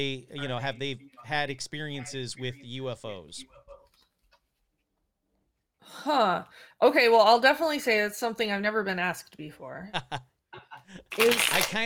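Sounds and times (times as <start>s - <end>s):
speech: 0.0s - 3.6s, 5.8s - 10.3s, 10.9s - 11.8s
tarot cards being shuffled: 11.1s - 11.8s.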